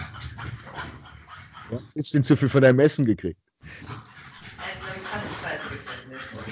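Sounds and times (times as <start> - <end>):
dog panting with breathy huffs: 0.0 - 1.8, 3.6 - 6.5
speech: 1.7 - 4.0.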